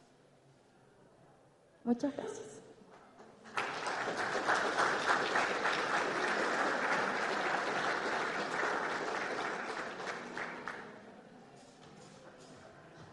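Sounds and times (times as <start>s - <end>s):
speech: 1.8s - 2.6s
crowd applauding after a presentation on renovating school buildings: 3.4s - 11.0s.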